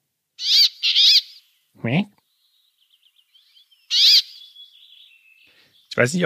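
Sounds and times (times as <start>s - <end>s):
Nordic finch related to the chaffinch giving nasal quacking calls: 0.4s - 1.5s, 3.8s - 5.6s
faint bird chirps: 0.4s - 6.2s.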